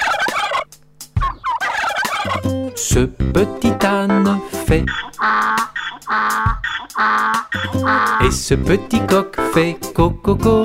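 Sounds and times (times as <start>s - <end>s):
little turkey gobbling: 0.0s - 2.6s, 4.8s - 8.4s
speech: 2.2s - 10.6s.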